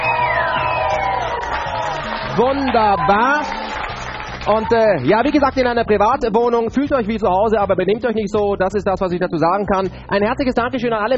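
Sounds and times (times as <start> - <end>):
whoops and falling shouts: 0.0 - 3.8
audience cheering at a live event in a private apartment: 0.0 - 5.1
speech: 2.4 - 3.6, 4.4 - 11.1.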